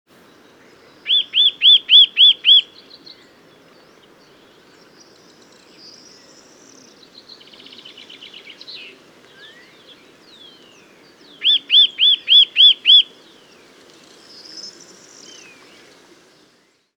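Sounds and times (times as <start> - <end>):
Eurasian nuthatch Sitta europaea giving loud ringing calls: 1.0 - 2.7, 11.4 - 13.1.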